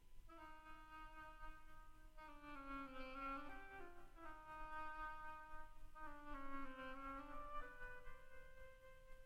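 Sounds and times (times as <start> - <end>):
solo oboe playing slow reedy melody: 0.0 - 9.2.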